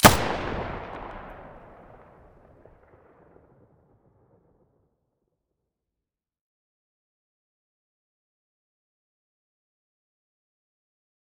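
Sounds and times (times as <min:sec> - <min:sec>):
weapon muzzle gunshot: 0:00.0 - 0:03.5.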